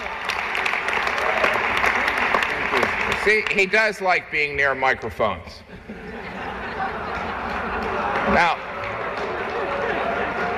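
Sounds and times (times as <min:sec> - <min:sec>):
large audience applauding at a formal dinner event: 0:00.0 - 0:04.2, 0:06.5 - 0:10.5
speech: 0:03.2 - 0:05.9, 0:08.3 - 0:08.6
laughter: 0:05.6 - 0:08.6.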